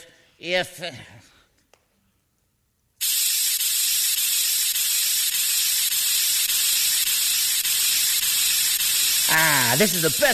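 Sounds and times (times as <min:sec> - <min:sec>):
speech: 0:00.4 - 0:01.3, 0:09.3 - 0:10.3
paint sprayer hissing while spraying a tree white: 0:03.0 - 0:10.3.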